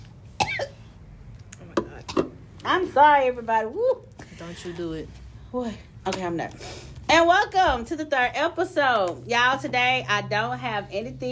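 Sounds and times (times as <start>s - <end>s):
low hum: 0.0s - 11.3s
person coughing: 0.4s - 0.8s
speech: 2.6s - 11.3s.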